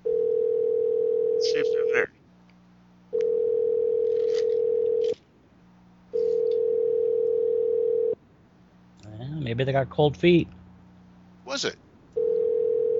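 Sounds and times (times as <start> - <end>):
electronic ringback tones from a phone call: 0.0 - 1.9, 3.1 - 5.2, 6.1 - 8.2, 12.2 - 12.9
faint hum: 0.0 - 12.9
speech: 9.6 - 10.6, 11.6 - 11.8.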